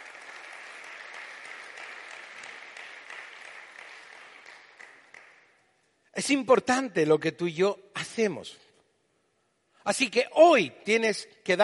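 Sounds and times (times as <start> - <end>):
crowd applauding: 0.0 - 5.7
speech: 6.2 - 8.6, 9.8 - 11.6.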